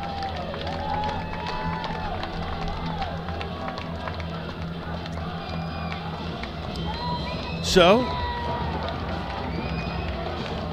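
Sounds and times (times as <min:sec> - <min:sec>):
large stadium crowd roaring at a college football bowl game: 0:00.0 - 0:10.7
whistles: 0:05.3 - 0:06.1, 0:06.7 - 0:08.4, 0:09.3 - 0:10.5
speech: 0:07.7 - 0:08.2.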